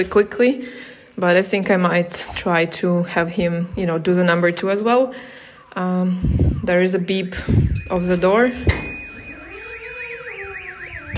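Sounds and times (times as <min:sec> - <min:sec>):
speech: 0:00.0 - 0:08.8
car alarm triggered by an explosion, warbling over a high whine: 0:05.3 - 0:11.1.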